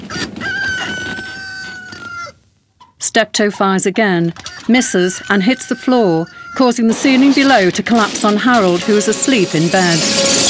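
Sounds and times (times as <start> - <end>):
cockerel crowing on a wall: 0.0 - 2.4, 4.4 - 6.8
speech: 3.1 - 10.4.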